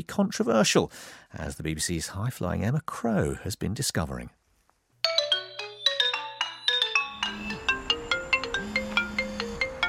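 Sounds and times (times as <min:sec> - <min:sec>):
speech: 0:00.0 - 0:04.4
mobile phone ringtone with bright bouncy electronic melody: 0:05.0 - 0:09.8.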